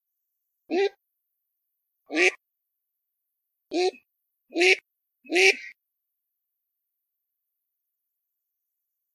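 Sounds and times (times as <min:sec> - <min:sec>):
Eurasian teal short nasal quack: 0:02.1 - 0:02.4, 0:03.7 - 0:05.8.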